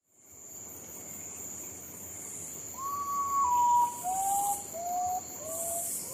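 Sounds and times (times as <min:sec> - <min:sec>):
potoo bird calling: 0:02.8 - 0:06.1.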